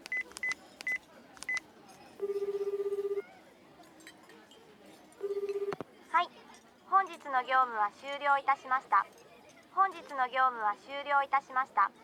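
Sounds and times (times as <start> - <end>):
telephone keypad dialing tones: 0.0 - 1.6, 2.2 - 3.2, 5.2 - 5.8
faint noise: 0.0 - 12.0
telephone ringback tone: 5.2 - 5.8
speech: 7.3 - 9.2, 9.8 - 12.0.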